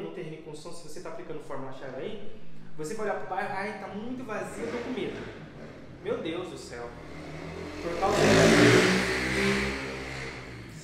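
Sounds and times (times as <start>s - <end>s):
speech: 0.5s - 5.4s, 6.0s - 9.8s
motorcycle engine revving while passing by: 4.3s - 10.8s.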